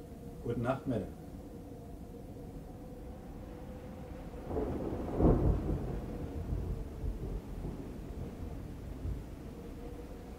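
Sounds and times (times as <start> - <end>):
steady falling rain: 0.0 - 10.3
speech: 0.4 - 1.2
thunder rumbling: 3.5 - 10.3.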